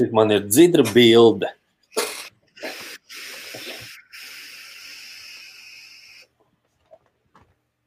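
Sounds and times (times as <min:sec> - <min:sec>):
speech: 0:00.0 - 0:02.0
vaping on a mesh RDA: 0:01.9 - 0:06.3.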